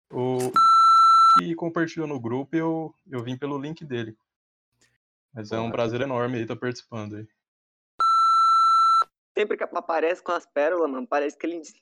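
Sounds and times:
high-pitched electronic censor bleep: 0.5 - 1.4, 8.0 - 9.1
speech: 1.5 - 4.3, 5.3 - 7.4, 9.4 - 11.8.

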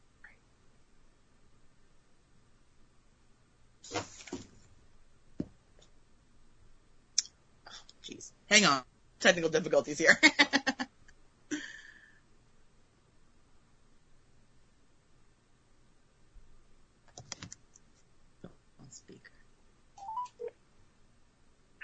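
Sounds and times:
low hiss: 0.0 - 21.8
speech: 8.5 - 10.6
short electronic beep: 20.0 - 20.5
telephone keypad dialing tones: 20.0 - 20.5.

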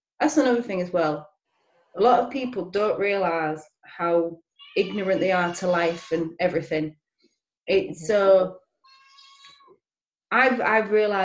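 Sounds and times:
speech: 0.2 - 1.3, 2.0 - 7.0, 7.7 - 8.6, 10.3 - 11.2
house cat meowing: 4.6 - 6.3, 8.8 - 9.7.

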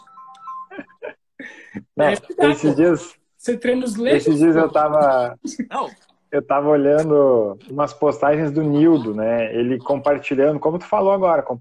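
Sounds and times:
phone ringtone electronic melody: 0.0 - 1.0
speech: 2.0 - 11.6.

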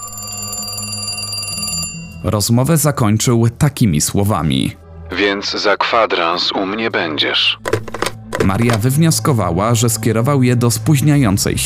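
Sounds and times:
old telephone bell ringing in a metallic trill: 0.0 - 2.3
speech: 2.2 - 7.7, 8.4 - 11.6.

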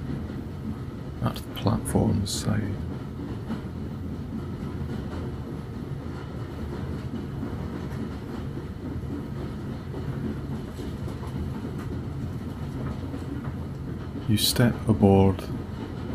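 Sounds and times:
departing steam train huffing, chuffing and whooshing: 0.0 - 16.1
faint repeated clatter of a departing steam train: 0.0 - 16.1
speech: 1.2 - 2.9, 14.3 - 15.6.

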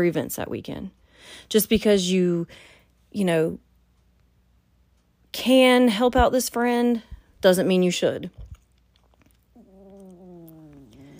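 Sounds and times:
speech: 0.0 - 3.6, 5.3 - 8.4
cat snoring: 9.6 - 11.1.

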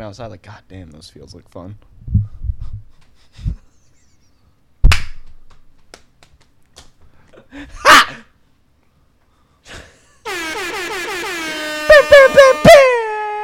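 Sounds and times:
speech: 0.0 - 2.2, 3.3 - 3.7
scattered thumps and snaps: 4.8 - 7.0
loud sustained air horn blaring: 10.2 - 13.4.

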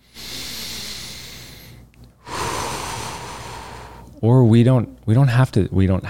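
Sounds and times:
person drawing a deep breath: 0.0 - 4.2
speech: 4.2 - 6.0.

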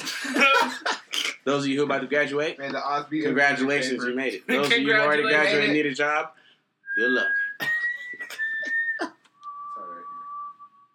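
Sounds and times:
laughter: 0.0 - 1.4
speech: 1.5 - 6.4, 7.0 - 7.4
person whistling a short four-note tune: 6.9 - 10.9.

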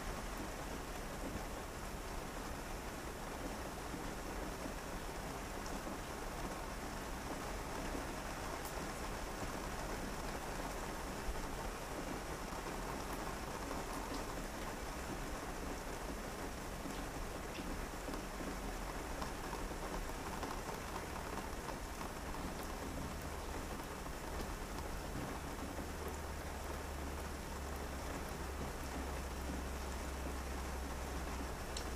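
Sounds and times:
rain falling steadily against a window at night: 0.0 - 31.9.

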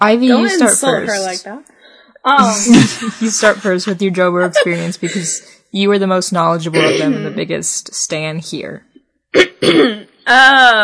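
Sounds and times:
speech: 0.0 - 10.8
laughter: 2.4 - 5.6
woman clearing her throat: 6.8 - 7.4, 9.4 - 10.3.

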